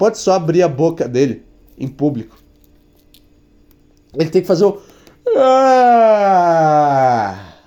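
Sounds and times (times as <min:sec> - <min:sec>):
speech: 0:00.0 - 0:02.4, 0:04.1 - 0:07.4
voice imitating a loud yawn: 0:05.2 - 0:07.6.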